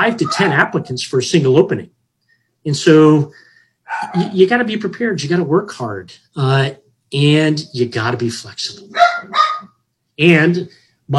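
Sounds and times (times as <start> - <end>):
speech: 0.0 - 2.0, 2.6 - 9.4, 10.2 - 11.1
chihuahuas yapping: 0.1 - 0.9, 8.8 - 9.8.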